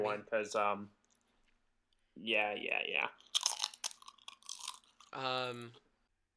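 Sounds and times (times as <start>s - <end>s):
speech: 0.0s - 1.0s, 2.2s - 3.4s, 5.1s - 5.8s
chewing crunchy potato chips: 3.2s - 5.8s.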